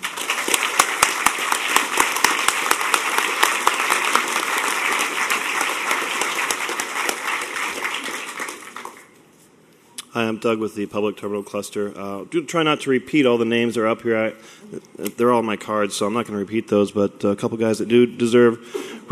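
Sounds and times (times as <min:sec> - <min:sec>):
audience applause: 0:00.0 - 0:09.1
speech: 0:10.2 - 0:19.1.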